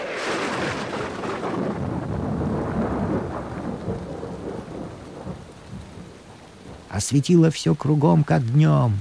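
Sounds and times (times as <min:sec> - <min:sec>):
heavy thunderclap booming and rolling: 0:00.0 - 0:07.1
steady dense rainfall hissing: 0:00.0 - 0:08.9
speech: 0:07.0 - 0:08.9.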